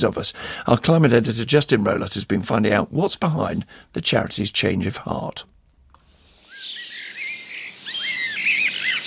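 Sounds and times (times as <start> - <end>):
speech: 0.0 - 5.5
garden birds singing in a chorus of chirps, whistles and trills: 6.2 - 9.0.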